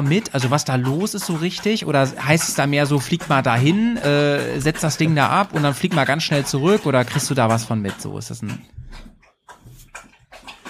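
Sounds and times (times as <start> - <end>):
speech: 0.0 - 9.0
dog lapping water from its bowl: 0.0 - 10.6.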